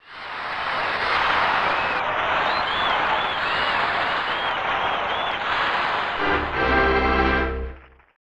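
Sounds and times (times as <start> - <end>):
cheering: 0.0 - 8.2.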